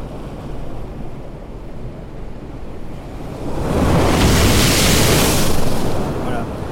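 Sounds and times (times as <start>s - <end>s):
processed ocean wave crashing with bright foamy high-end filtering: 3.4s - 6.4s.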